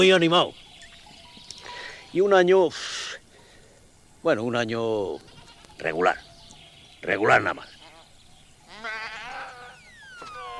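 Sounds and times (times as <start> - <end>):
speech: 0.0 - 0.6, 2.1 - 3.0, 4.2 - 6.3, 7.0 - 7.7
sheep bleating: 5.1 - 5.8, 8.7 - 9.8.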